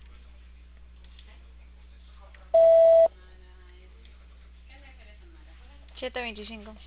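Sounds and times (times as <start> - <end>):
voicemail beep tone: 2.6 - 3.1
faint phone line hum: 2.6 - 3.2
speech: 6.0 - 6.8.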